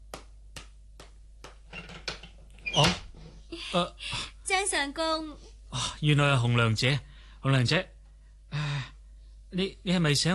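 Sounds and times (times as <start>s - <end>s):
door creaking open: 1.7s - 3.4s
speech: 3.7s - 8.0s, 9.6s - 10.3s.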